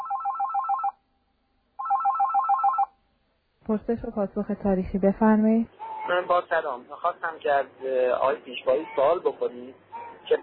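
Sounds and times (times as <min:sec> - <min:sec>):
telephone ringing with electronic trill: 0:00.0 - 0:01.0, 0:01.8 - 0:02.9
speech: 0:03.7 - 0:10.4.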